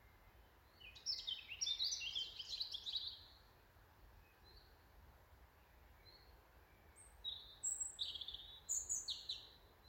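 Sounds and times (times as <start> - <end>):
European robin Erithacus rubecula singing high thin warbled phrases: 0.7 - 3.4, 7.0 - 9.6.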